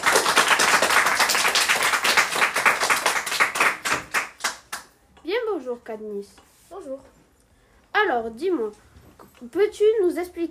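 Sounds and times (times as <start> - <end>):
audience applauding a guest's arrival for an interview: 0.0 - 4.8
speech: 5.9 - 7.2, 8.0 - 10.5.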